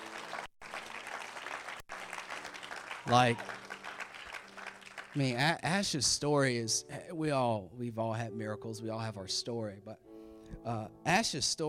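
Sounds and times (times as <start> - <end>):
audience clapping: 0.0 - 5.8
speech: 3.1 - 3.6, 5.2 - 10.0, 10.6 - 11.6.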